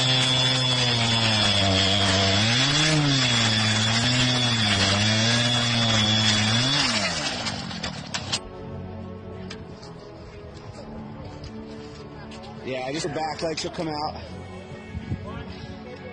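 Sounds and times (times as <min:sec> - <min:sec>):
chainsaw cutting: 0:00.0 - 0:08.4
speech: 0:12.9 - 0:14.4.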